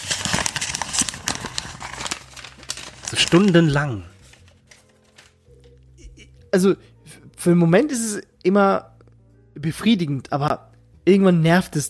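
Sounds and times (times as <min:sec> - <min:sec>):
paper being crumpled: 0:00.0 - 0:05.8
speech: 0:03.1 - 0:04.1, 0:06.5 - 0:08.9, 0:09.6 - 0:11.8.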